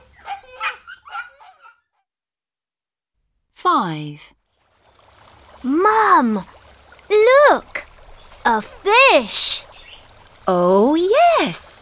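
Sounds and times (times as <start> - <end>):
dog giving yappy barks with a whiny edge: 0.0 - 2.0
speech: 3.7 - 4.4, 5.6 - 7.8, 8.4 - 9.7, 10.5 - 11.6.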